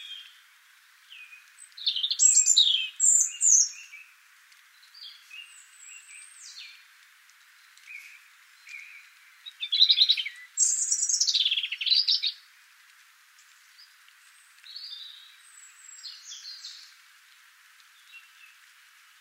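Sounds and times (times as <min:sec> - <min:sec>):
European robin singing: 0:00.0 - 0:19.1.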